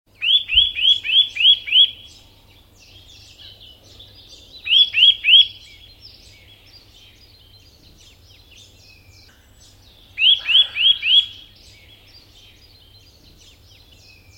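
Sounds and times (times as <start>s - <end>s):
Eurasian nuthatch (Sitta europaea) calling: 0.2s - 14.3s.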